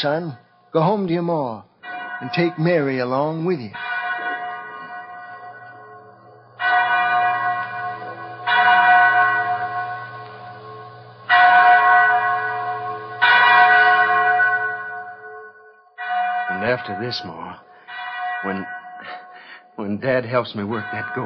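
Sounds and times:
speech: 0:00.0 - 0:03.8, 0:16.9 - 0:17.7, 0:18.4 - 0:19.2, 0:19.8 - 0:21.2
chapel bell tolling: 0:00.0 - 0:21.2
low steady hum: 0:04.8 - 0:15.3.

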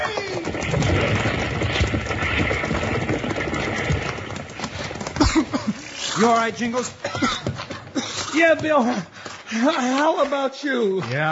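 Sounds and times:
hooves of several horses freed from a burning livery stable clattering: 0:00.0 - 0:11.3
speech: 0:06.2 - 0:07.3, 0:08.4 - 0:11.3.

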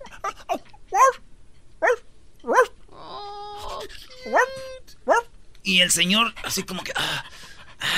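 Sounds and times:
dog barking in sharp yelping bursts: 0:00.2 - 0:01.2, 0:01.8 - 0:02.8, 0:05.1 - 0:05.3
speech: 0:05.7 - 0:07.9.

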